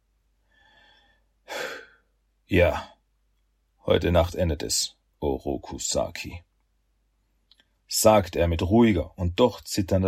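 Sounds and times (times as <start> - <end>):
person taking a deep breath in and out: 0.4 - 2.1
speech: 2.5 - 2.9, 3.9 - 6.5, 7.9 - 10.0.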